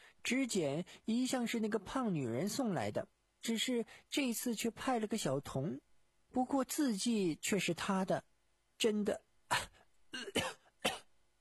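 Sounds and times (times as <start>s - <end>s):
speech: 0.2s - 9.7s
person coughing violently in a dramatized scene: 9.5s - 11.1s.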